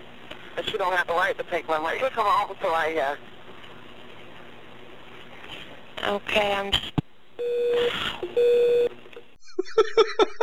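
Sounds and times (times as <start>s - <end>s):
speech: 0.6s - 3.3s, 6.0s - 9.0s, 9.8s - 10.4s
two steady electronic tones from a phone line at call end: 7.4s - 8.9s
laughter: 9.4s - 10.4s.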